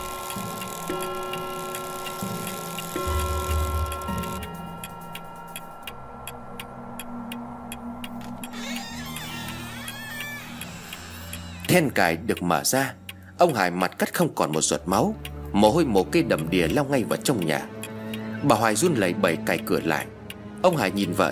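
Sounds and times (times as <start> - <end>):
clock ticking at 3 a.m.: 0.0 - 21.3
speech: 0.9 - 1.4, 11.8 - 17.7, 18.4 - 21.3
continuous low droning hum: 2.8 - 11.7.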